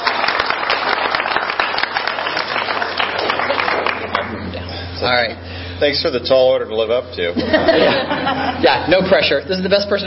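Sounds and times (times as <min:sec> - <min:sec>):
room full of people clapping: 0:00.0 - 0:04.4
laughter: 0:03.0 - 0:04.7, 0:07.3 - 0:09.4
speech: 0:05.0 - 0:10.0.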